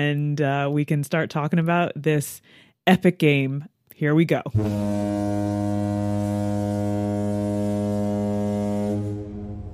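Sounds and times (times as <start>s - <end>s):
speech: 0.0s - 6.6s
deep foghorn blast sounded as a spoiler warning: 4.5s - 9.7s.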